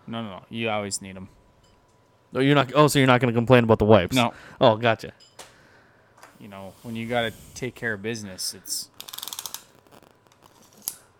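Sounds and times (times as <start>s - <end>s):
speech: 0.1s - 1.4s, 2.3s - 5.3s, 6.4s - 8.9s
bow hunter's measuring tape ratcheting clicks: 9.0s - 11.0s.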